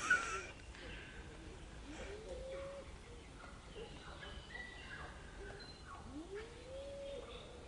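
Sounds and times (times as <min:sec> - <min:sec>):
outdoor ambience: 0:00.0 - 0:07.6
pigeon cooing: 0:01.4 - 0:03.2, 0:06.0 - 0:07.6.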